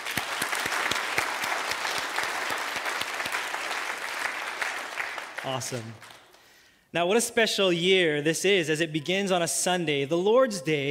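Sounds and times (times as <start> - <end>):
church congregation applauding during a Sunday worship service: 0.0 - 6.6
speech: 5.4 - 6.1, 6.9 - 10.8.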